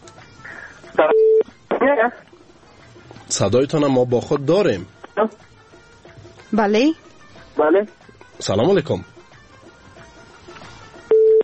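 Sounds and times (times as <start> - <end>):
speech: 1.0 - 1.2, 2.0 - 2.3, 3.3 - 5.5, 6.5 - 9.1
telephone line not connecting beep: 1.0 - 1.5, 11.1 - 11.4.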